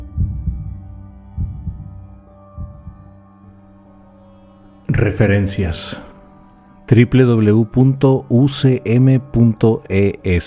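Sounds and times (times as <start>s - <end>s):
deep thumping heartbeat in lub-dub pairs: 0.0s - 3.2s
speech: 4.9s - 6.1s, 6.9s - 10.4s.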